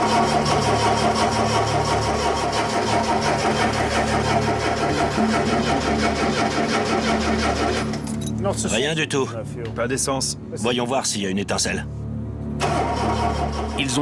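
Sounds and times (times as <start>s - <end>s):
car engine cranking but not starting: 0.0s - 8.4s, 12.6s - 13.9s
speech: 8.5s - 12.0s, 13.8s - 13.9s.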